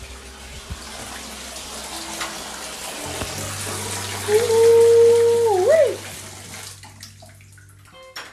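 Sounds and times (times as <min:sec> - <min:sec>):
running water filling a bathtub for a bubble bath: 0:00.0 - 0:08.3
speech: 0:04.3 - 0:04.6.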